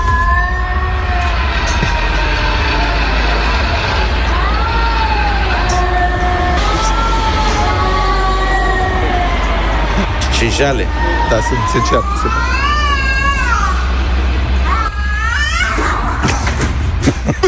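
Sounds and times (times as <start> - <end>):
cats yowling at night, one on a roof behind an apartment block: 0.0 - 9.9, 10.6 - 13.9
steady rushing noise: 0.0 - 17.4
speech: 10.4 - 12.6
laughter: 16.2 - 17.4.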